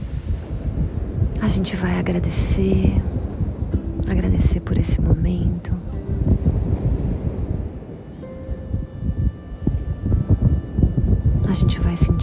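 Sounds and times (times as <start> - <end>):
strong gusty wind at a beach: 0.0 - 12.2
speech: 1.4 - 3.2, 4.1 - 6.5, 11.5 - 12.2
faint sustained tone: 3.7 - 12.2.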